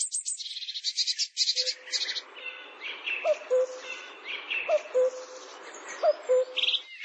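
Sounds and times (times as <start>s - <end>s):
Bar-winged prinia song: 1.5s - 6.9s.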